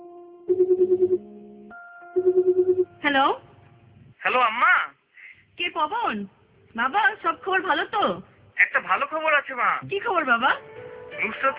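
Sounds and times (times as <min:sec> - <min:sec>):
telephone ringing: 0:00.5 - 0:02.9
speech: 0:03.2 - 0:03.5, 0:04.2 - 0:04.9, 0:05.6 - 0:11.5.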